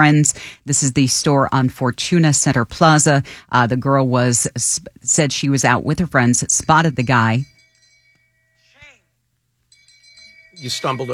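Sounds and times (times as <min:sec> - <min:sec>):
speech: 0:00.0 - 0:07.5, 0:10.6 - 0:11.1
low steady hum: 0:00.0 - 0:08.0
bell chime from a small phone speaker: 0:06.4 - 0:09.0, 0:09.7 - 0:11.1.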